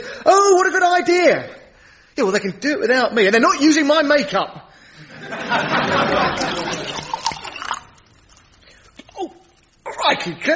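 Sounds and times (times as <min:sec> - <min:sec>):
speech: 0:00.2 - 0:01.6, 0:02.2 - 0:04.6, 0:05.2 - 0:07.0, 0:10.1 - 0:10.5
laughter: 0:05.0 - 0:07.2
elderflower pressé fizzy drink being poured into a glass: 0:06.2 - 0:09.9.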